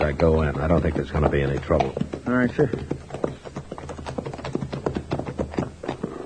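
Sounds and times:
several horses ridden up to a house with hooves clip-clopping: 0.0s - 6.2s
speech: 0.1s - 3.0s.

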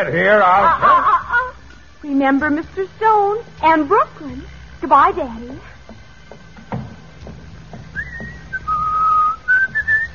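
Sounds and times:
speech: 0.0s - 1.2s, 2.0s - 5.7s
laughter: 0.0s - 1.6s
faint hum: 0.0s - 10.1s
woman whistling a wandering melodic tune in a hallway outside an office: 8.0s - 10.1s.

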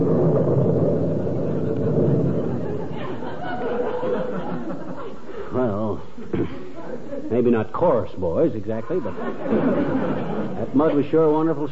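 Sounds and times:
loud rolling thunderclap: 0.0s - 5.0s
laughter: 2.3s - 7.6s, 8.8s - 11.1s
speech: 7.4s - 11.6s.

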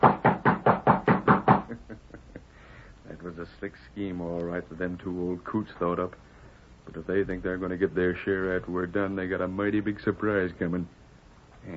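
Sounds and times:
knuckles knocking on a ranch house door: 0.0s - 1.8s
speech: 3.6s - 6.3s, 6.9s - 11.0s.

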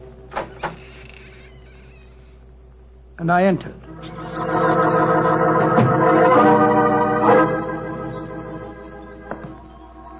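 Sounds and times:
faint steady hum: 0.0s - 10.1s
wooden door creaking open with its latch lifted: 0.3s - 2.4s
speech: 3.2s - 3.9s.

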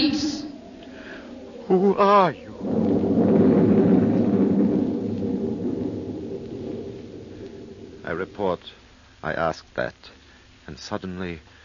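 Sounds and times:
deep thunder rumbling: 0.0s - 9.2s
speech: 1.7s - 2.7s, 8.2s - 11.5s.

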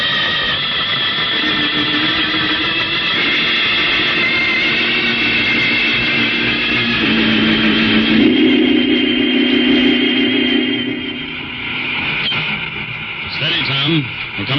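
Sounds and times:
jet boat rocket engine roar blasting off: 0.0s - 14.5s.

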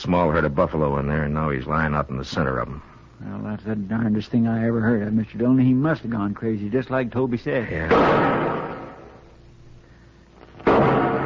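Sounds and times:
speech: 0.1s - 8.6s
rifle shots as a signal for help: 7.9s - 9.2s.

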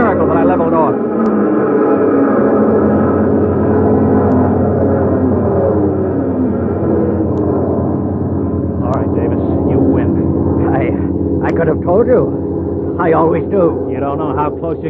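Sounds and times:
propeller airplane engine roaring at full throttle while climbing: 0.0s - 14.8s
strong wind: 0.0s - 14.8s
speech: 11.6s - 12.4s, 13.0s - 14.8s.

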